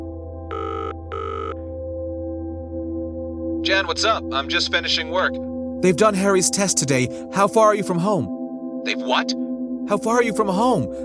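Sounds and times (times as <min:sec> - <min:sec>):
phone call ringing tone: 0:00.5 - 0:01.6
speech: 0:03.7 - 0:11.0.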